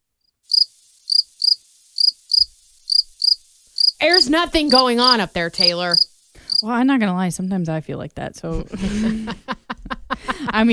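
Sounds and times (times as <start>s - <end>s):
crickets chirping in short shrill trills: 0.4s - 6.6s
speech: 4.0s - 6.0s, 6.6s - 9.5s, 10.5s - 10.7s
laughter: 8.5s - 10.7s.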